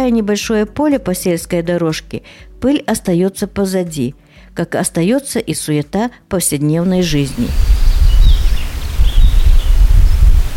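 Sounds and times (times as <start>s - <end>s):
speech: 0.0s - 7.8s
birdsong in an orchard: 6.8s - 10.5s
gusty wind rumbling through orchard trees: 6.8s - 10.5s
orchard tree leaves rustling: 6.8s - 10.5s.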